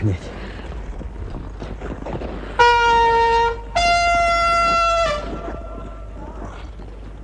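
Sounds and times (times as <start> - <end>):
speech: 0.0 - 0.3
hand horn blown as a signal: 2.6 - 5.7.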